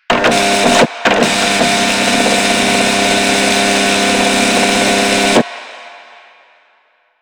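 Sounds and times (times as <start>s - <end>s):
office fax machine: 0.0s - 5.6s.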